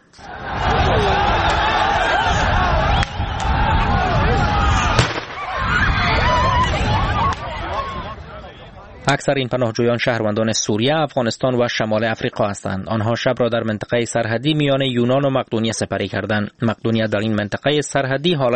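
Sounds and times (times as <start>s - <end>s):
dense crowd roaring and shouting: 0.0s - 9.1s
speech: 0.1s - 0.6s, 9.1s - 18.5s
tear gas launches: 4.9s - 5.6s
gunfire bangs: 5.0s - 5.6s.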